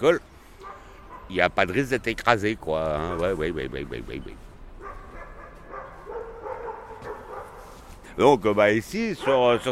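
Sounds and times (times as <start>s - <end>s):
speech: 0.0s - 0.3s, 1.3s - 4.5s, 8.2s - 9.7s
outdoor hum: 0.0s - 9.7s
white dog barking on a town square: 0.6s - 1.9s, 3.0s - 3.4s, 4.8s - 7.9s, 9.1s - 9.7s.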